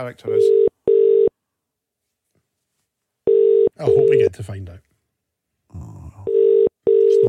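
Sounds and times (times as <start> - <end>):
speech: 0.0 - 0.7, 3.8 - 4.9
electronic telephone ringing tone of an outgoing phone call: 0.4 - 1.3, 3.3 - 4.3, 6.3 - 7.2.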